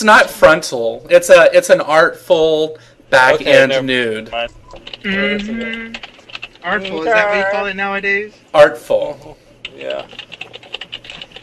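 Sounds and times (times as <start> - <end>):
speech: 0.0 - 10.3
fingers typing on a computer keyboard: 4.4 - 7.0, 9.6 - 11.4
murmur of a voice: 5.0 - 6.0.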